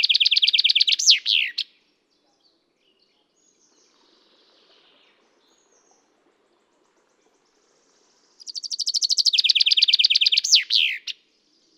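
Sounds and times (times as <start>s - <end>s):
common chaffinch Fringilla coelebs singing: 0.0s - 1.7s, 8.3s - 11.7s.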